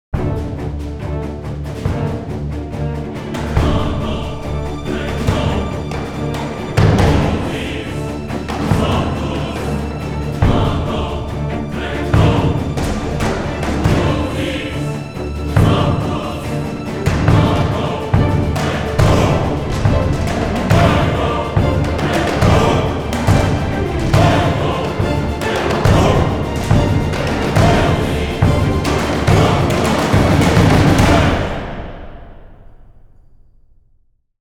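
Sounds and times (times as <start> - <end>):
suspended choir and orchestra tension chord: 0.2 - 32.6.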